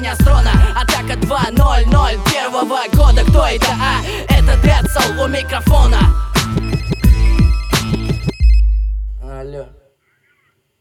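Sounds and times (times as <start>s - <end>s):
speech: 0.0s - 6.6s
telephone ringing with electronic ringtone melody: 4.7s - 8.8s.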